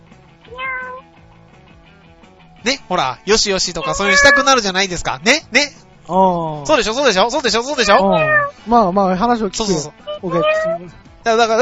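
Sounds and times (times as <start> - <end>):
street cat meowing by the roadside: 0.5 - 1.1, 3.8 - 4.5, 7.7 - 8.6, 9.9 - 10.9
speech: 2.6 - 11.6.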